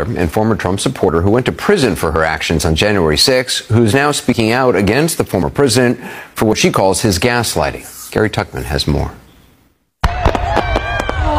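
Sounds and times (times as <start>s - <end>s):
speech: 0.0s - 9.2s
fireworks exploding at a fireworks show: 10.0s - 11.3s.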